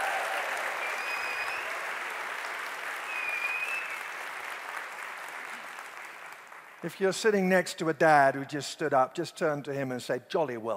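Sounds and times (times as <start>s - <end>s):
large audience applause: 0.0s - 6.8s
faint whistles: 0.8s - 1.8s, 3.0s - 4.1s
speech: 6.8s - 10.7s.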